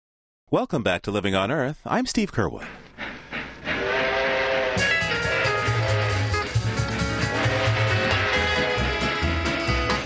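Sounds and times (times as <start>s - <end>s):
speech: 0.5s - 2.8s
passenger express train rumbling along with rhythmic clatter: 2.7s - 9.9s.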